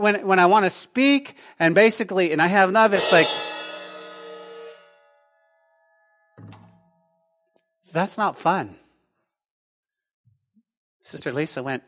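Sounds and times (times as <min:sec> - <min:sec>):
speech: 0:00.0 - 0:03.5, 0:07.9 - 0:08.8, 0:11.1 - 0:11.8
metallic clang of cymbal or brass struck: 0:03.0 - 0:05.2.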